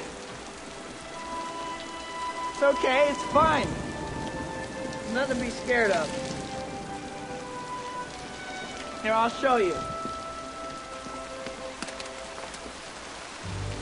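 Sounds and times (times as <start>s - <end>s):
rain on a hard surface: 0.0s - 13.8s
speech: 2.6s - 3.8s, 5.1s - 6.4s, 9.0s - 9.9s.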